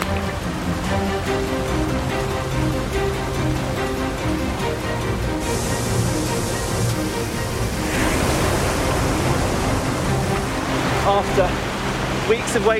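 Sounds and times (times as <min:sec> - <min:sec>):
loud broadband rush of moving water and ice: 0:00.0 - 0:12.7
river ice breaking up: 0:06.5 - 0:12.7
speech: 0:12.3 - 0:12.7.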